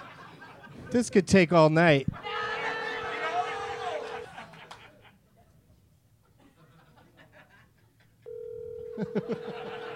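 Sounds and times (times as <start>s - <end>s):
laughter: 0.0s - 1.0s, 2.2s - 5.4s, 6.2s - 8.2s, 8.9s - 9.9s
speech: 0.9s - 2.2s
telephone ringing with electronic tones: 8.3s - 9.9s.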